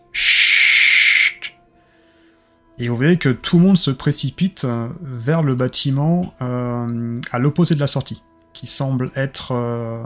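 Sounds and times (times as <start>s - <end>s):
whistle blast: 0.0s - 1.6s
speech: 2.8s - 10.0s.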